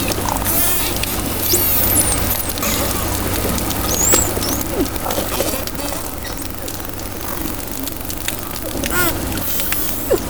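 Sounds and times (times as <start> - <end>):
low hum: 0.0 - 10.2
dolphin whistles: 1.2 - 4.9.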